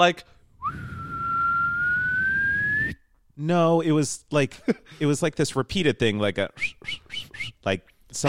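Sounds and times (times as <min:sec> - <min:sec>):
speech: 0:00.0 - 0:00.8, 0:03.4 - 0:08.2
person whistling a quiet call in one long thin pure tone: 0:00.6 - 0:03.0, 0:06.6 - 0:07.6.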